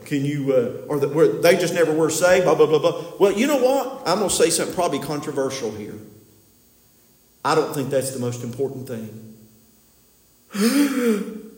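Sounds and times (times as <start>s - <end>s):
speech: 0.1s - 6.1s, 7.4s - 9.3s, 10.5s - 11.4s
person gasping in shock: 10.5s - 11.5s.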